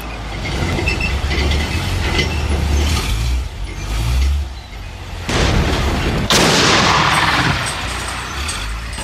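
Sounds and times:
heavy tank engine rumbling and clanking: 0:00.0 - 0:09.0
gunfire blasts: 0:05.3 - 0:08.1.

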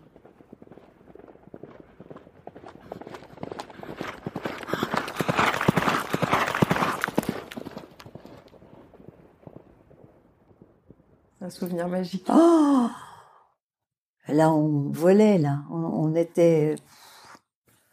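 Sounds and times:
horses galloping: 0:00.0 - 0:11.2
speech: 0:11.5 - 0:13.0, 0:14.3 - 0:17.0.

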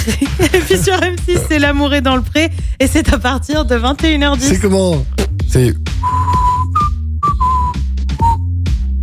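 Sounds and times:
laughter: 0:00.0 - 0:01.6
speech: 0:00.0 - 0:06.4
person whistling a classic film theme from memory: 0:06.0 - 0:08.6.

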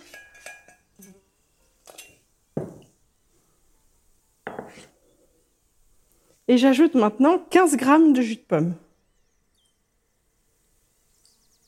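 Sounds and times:
rubber spatula scraping melted butter from a saucepan: 0:00.0 - 0:02.2, 0:04.5 - 0:05.1
utensil clinking against metal: 0:00.0 - 0:02.9
speech: 0:06.5 - 0:08.8.

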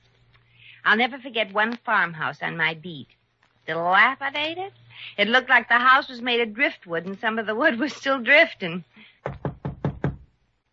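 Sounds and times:
speech: 0:00.8 - 0:09.4
firm knocks on the wooden door of a dilapidated farmhouse: 0:09.2 - 0:10.3.

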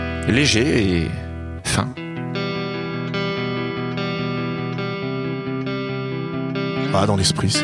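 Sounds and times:
clean-tone lightly crunchy electric guitar chords with reverb and delay: 0:00.0 - 0:07.6
speech: 0:00.2 - 0:02.0, 0:06.9 - 0:07.6.

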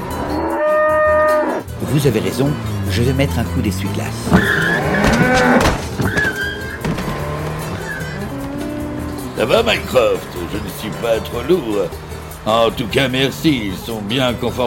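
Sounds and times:
cow on the hood of a speeding car mooing: 0:00.0 - 0:01.6, 0:02.4 - 0:05.6, 0:06.4 - 0:11.6
speeding car engine roaring: 0:00.0 - 0:14.6
speeding car tires screeching through turns: 0:00.0 - 0:14.6
speech: 0:01.9 - 0:04.7, 0:09.4 - 0:14.6.

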